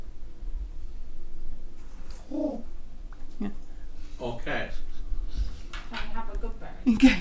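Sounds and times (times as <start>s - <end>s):
outdoor hum: 0.0s - 7.2s
pigeon cooing: 2.0s - 3.7s
speech: 2.3s - 2.7s, 3.4s - 3.6s.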